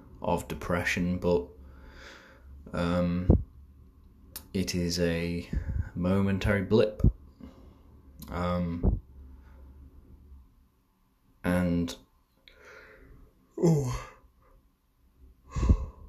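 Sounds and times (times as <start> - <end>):
speech: 0.2 - 3.4, 4.5 - 7.2, 8.3 - 9.0, 11.4 - 12.0, 13.6 - 14.1
person yawning: 13.6 - 14.2.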